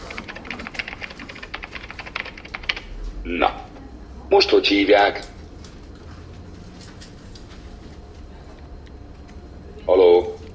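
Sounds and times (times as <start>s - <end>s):
typing on a computer keyboard: 0.0s - 2.9s
speech: 3.2s - 3.7s, 4.3s - 5.3s.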